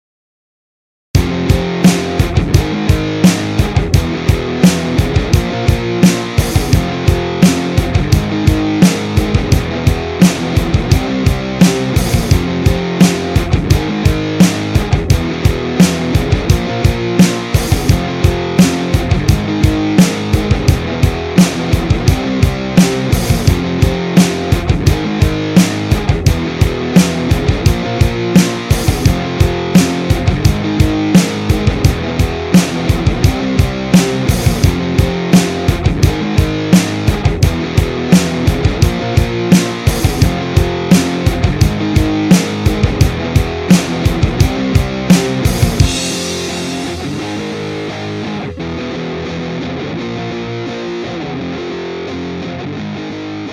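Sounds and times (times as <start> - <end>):
indie rock guitar strumming: 1.2 - 53.5.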